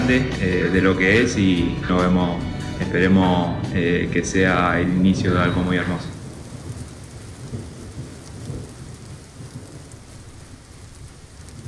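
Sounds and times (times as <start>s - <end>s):
person singing: 0.0s - 6.1s
low thunder-like rumble: 0.0s - 11.6s
steady rain in a song: 0.0s - 11.6s
speech: 0.1s - 6.1s.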